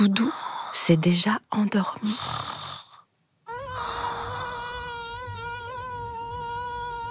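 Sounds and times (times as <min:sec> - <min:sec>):
speech: 0:00.0 - 0:02.6
mosquito buzzing in flight: 0:02.1 - 0:07.0.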